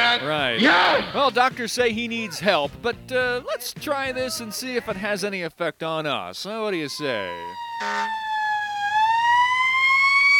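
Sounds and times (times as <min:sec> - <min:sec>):
speech: 0:00.2 - 0:08.3
siren wailing: 0:06.8 - 0:10.3.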